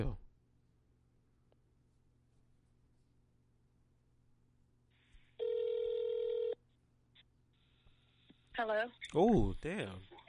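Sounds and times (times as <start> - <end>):
speech: 0.0 - 0.2, 8.6 - 10.2
outgoing phone call electronic ringback tone: 5.4 - 6.6.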